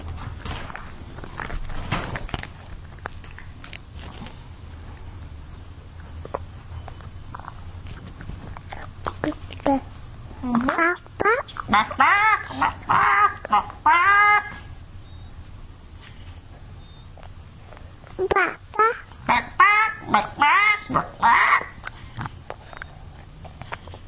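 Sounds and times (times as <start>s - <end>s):
chicken-like clucking and squawking calls: 10.8s - 14.7s, 18.8s - 21.8s.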